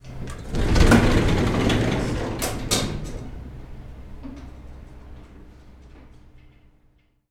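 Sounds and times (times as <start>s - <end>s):
elevator door opening: 0.0s - 5.2s.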